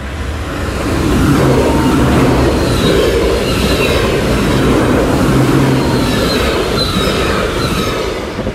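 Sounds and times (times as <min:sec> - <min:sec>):
high-speed intercity train passing: 0:00.0 - 0:08.5.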